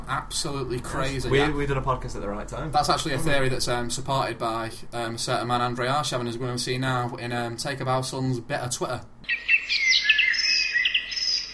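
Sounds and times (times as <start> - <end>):
speech: 0.1 - 9.8
birds chirping: 9.2 - 11.5.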